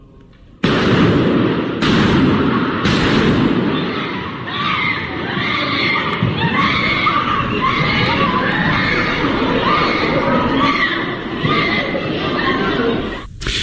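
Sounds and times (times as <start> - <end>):
sharp gunshots in a church: 0.6 - 4.0
panicked churchgoers screaming and shouting while fleeing: 2.1 - 13.3
laughter: 6.2 - 13.3.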